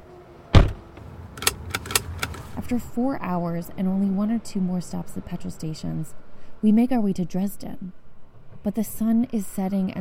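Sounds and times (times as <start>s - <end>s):
car door shutting: 0.5s - 2.6s
speech: 2.7s - 8.0s, 8.6s - 9.9s.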